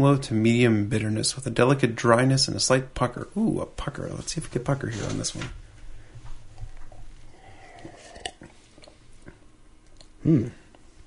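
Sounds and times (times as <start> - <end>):
speech: 0.0 - 5.6, 10.2 - 10.6
person sipping and tasting heavily carbonated beer: 6.6 - 11.0
person giving a brief voiced hum: 10.2 - 10.7.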